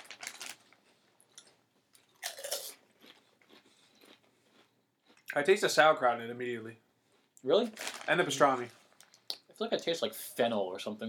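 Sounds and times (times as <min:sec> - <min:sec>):
biting and chewing crunchy regular potato chips: 0:01.2 - 0:05.4
speech: 0:05.3 - 0:06.8, 0:07.4 - 0:08.8, 0:09.6 - 0:11.0.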